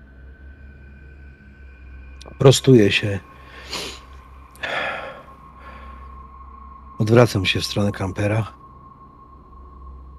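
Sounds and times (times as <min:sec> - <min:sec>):
speech: 0:02.2 - 0:04.0, 0:07.0 - 0:08.6
person gasping to catch their breath: 0:03.5 - 0:04.0, 0:04.6 - 0:05.8.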